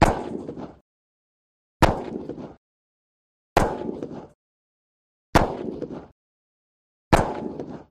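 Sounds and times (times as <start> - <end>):
12 gauge shotgun shots: 0.0 - 0.8, 1.8 - 2.6, 3.6 - 4.3, 5.4 - 6.1, 7.1 - 7.9.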